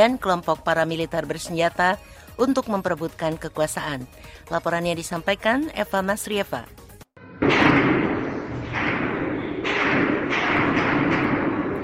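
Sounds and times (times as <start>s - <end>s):
speech: 0.0s - 6.8s
bomb explosions: 7.2s - 11.8s
gunfire exchange: 7.4s - 11.8s.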